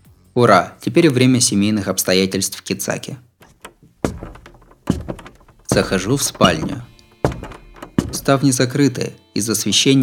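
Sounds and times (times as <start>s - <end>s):
speech: 0.4s - 3.3s, 5.8s - 6.9s, 8.3s - 10.0s
door latch clicks: 3.4s - 8.4s.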